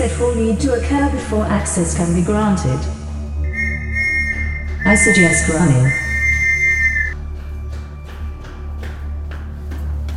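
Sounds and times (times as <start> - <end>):
speech: 0.1 - 3.0, 4.9 - 6.0
shrill whistle blast: 3.4 - 7.2
quick footsteps: 3.5 - 10.1.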